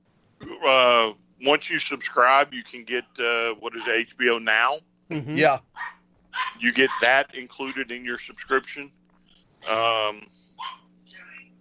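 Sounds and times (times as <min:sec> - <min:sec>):
low steady hum: 0:00.0 - 0:11.6
speech: 0:00.6 - 0:09.0, 0:09.6 - 0:11.2
dog barking: 0:03.7 - 0:04.1, 0:05.7 - 0:07.9, 0:10.6 - 0:10.9.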